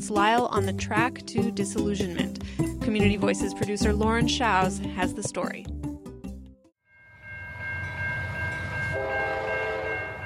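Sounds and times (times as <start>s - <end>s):
speech: 0.0s - 5.8s
sustained train horn tones: 8.6s - 10.2s.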